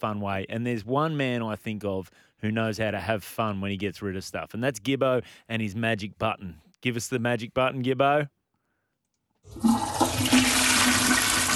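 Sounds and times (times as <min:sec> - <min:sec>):
speech: 0:00.0 - 0:08.4, 0:09.4 - 0:10.5
toilet flushing with rushing, gurgling water: 0:09.5 - 0:11.5.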